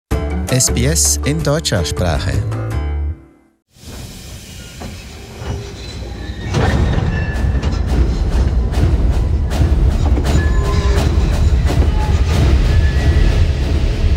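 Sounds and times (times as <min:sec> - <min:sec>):
speech: 0:00.5 - 0:02.7
heavy freight train rumbling past in the Australian Outback: 0:03.8 - 0:14.1
rattling clanks and metallic clicks of a freight train: 0:04.7 - 0:12.7.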